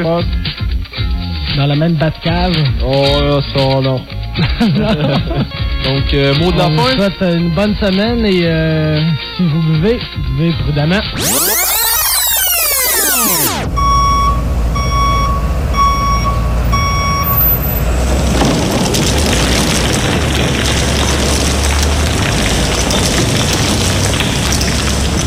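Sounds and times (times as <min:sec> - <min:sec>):
speech: 0:00.0 - 0:00.5, 0:01.6 - 0:11.6
laughter: 0:04.4 - 0:05.9
ten-wheeler truck reversing beeps in a parking lot: 0:11.2 - 0:17.8
ten-wheeler truck engine rumble in a parking lot: 0:11.2 - 0:25.2.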